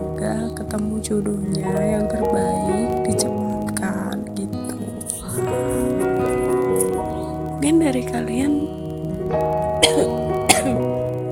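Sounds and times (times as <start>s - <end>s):
steady soft music: 0.0s - 11.3s
speech: 0.2s - 3.4s, 7.8s - 10.2s
person coughing: 9.8s - 10.8s.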